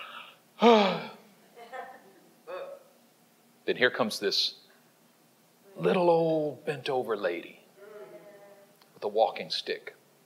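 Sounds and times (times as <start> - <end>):
softer breathy vocal sounds: 0.0 - 1.2
person letting out an exaggerated yawn with a falling pitch: 0.6 - 1.2, 2.5 - 2.9
speech: 3.7 - 4.6, 5.8 - 7.6, 9.0 - 10.0.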